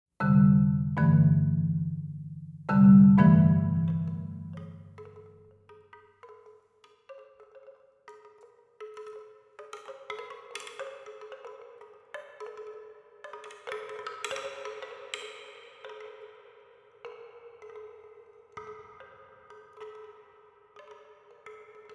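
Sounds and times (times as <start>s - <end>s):
marimba: 0.2s - 5.3s.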